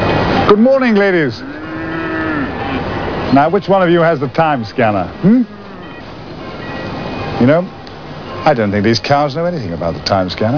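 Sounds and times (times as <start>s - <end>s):
steady background noise: 0.0s - 10.5s
cow mooing: 1.2s - 3.2s, 5.1s - 6.1s.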